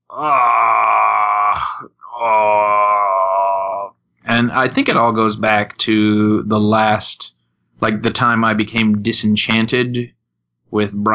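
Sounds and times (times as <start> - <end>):
speech: 0.1 - 0.6, 4.5 - 11.1
person groaning in exasperation: 0.1 - 3.9.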